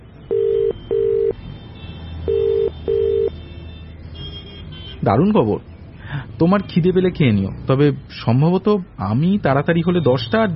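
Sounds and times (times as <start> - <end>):
mobile phone call ringback tone beeps: 0.3 - 1.4, 2.3 - 3.3
speech: 5.0 - 5.7, 6.4 - 10.5.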